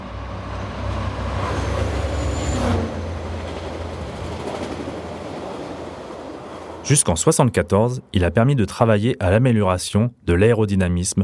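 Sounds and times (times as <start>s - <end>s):
SNCF gas-turbine prototype trainset from 1972 rolling: 0.0s - 7.4s
speech: 6.9s - 11.2s.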